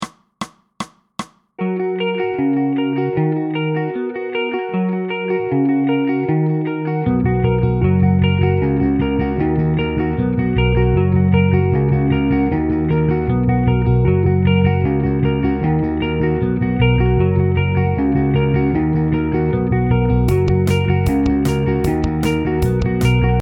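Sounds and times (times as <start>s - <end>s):
drums in a song intro: 0.0s - 1.5s, 20.3s - 23.4s
guitar in a song intro: 1.6s - 23.4s.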